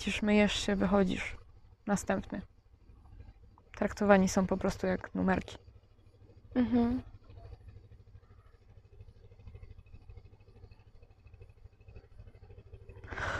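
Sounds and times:
speech: 0:00.0 - 0:02.5, 0:03.8 - 0:05.6, 0:06.5 - 0:07.1
motorboat engine passing by: 0:00.0 - 0:13.3.

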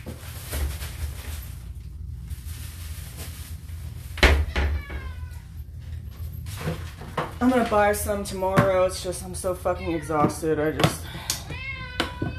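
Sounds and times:
steady low hum: 0:00.0 - 0:12.3
male cat meowing: 0:04.4 - 0:05.6, 0:11.4 - 0:12.3
speech: 0:07.4 - 0:11.2.

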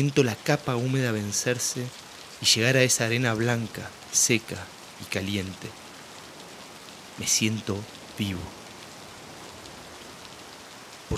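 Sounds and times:
speech: 0:00.0 - 0:05.8, 0:07.2 - 0:08.6
steady rain pattering on a surface: 0:00.0 - 0:11.1.

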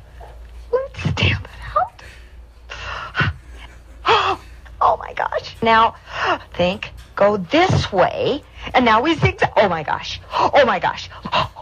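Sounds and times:
heavy breathing: 0:01.8 - 0:04.8, 0:06.0 - 0:06.5
speech: 0:05.6 - 0:11.5.

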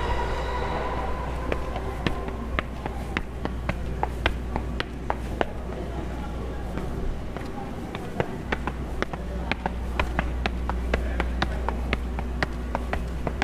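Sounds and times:
soft tone: 0:00.0 - 0:04.3
faint murmuring voices: 0:00.0 - 0:13.4
low rumble of traffic or a passing train in Tokyo: 0:00.0 - 0:13.4.

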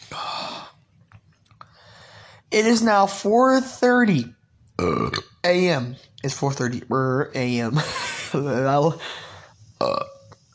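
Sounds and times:
speech: 0:02.5 - 0:09.3
person burping: 0:04.8 - 0:05.4, 0:09.8 - 0:10.4.

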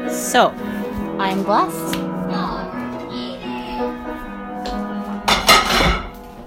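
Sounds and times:
speech: 0:00.1 - 0:02.4
dishes clinking and clattering as they are set down and stacked: 0:05.2 - 0:06.2.

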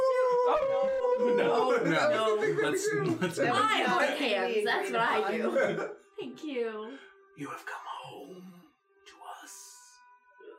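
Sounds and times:
people howling like wolves: 0:00.0 - 0:03.3
laughter: 0:00.6 - 0:05.9
speech: 0:00.6 - 0:08.4.

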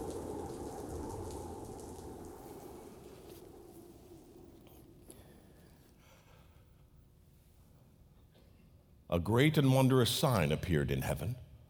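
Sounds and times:
deep rolling rumble of thunder: 0:00.0 - 0:05.2
thunderstorm rain and hail pouring down: 0:00.0 - 0:05.2
speech: 0:09.1 - 0:11.4.

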